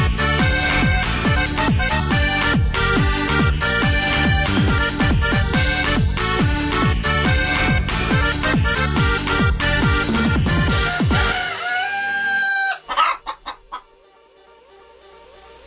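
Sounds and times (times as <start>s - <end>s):
upbeat bouncy party dance song: 0.0s - 13.9s
chicken clucks: 10.9s - 13.9s.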